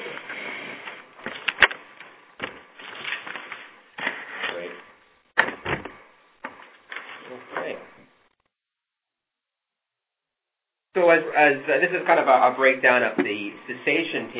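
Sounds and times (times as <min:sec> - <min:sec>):
chairs thumping as they are set down: 0:05.4 - 0:06.7
speech: 0:11.1 - 0:14.3.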